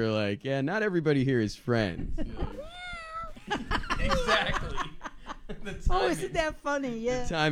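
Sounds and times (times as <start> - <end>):
speech: 0.0 - 2.4, 5.6 - 7.4
people talking and laughing: 1.7 - 7.3
cat meowing: 2.5 - 3.4.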